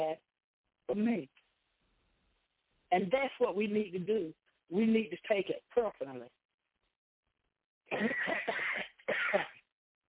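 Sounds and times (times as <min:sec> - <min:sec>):
speech: 0:00.0 - 0:00.3, 0:00.9 - 0:01.4, 0:02.9 - 0:06.4, 0:07.9 - 0:09.5
person giving a message in a harsh hacking coughing fit: 0:07.9 - 0:09.7.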